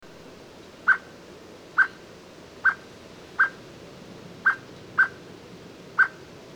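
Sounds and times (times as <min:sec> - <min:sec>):
low background hiss: 0:00.0 - 0:06.5
common blackbird Turdus merula clucking: 0:00.9 - 0:01.1, 0:01.8 - 0:02.0, 0:02.6 - 0:03.6, 0:04.4 - 0:05.2, 0:06.0 - 0:06.2.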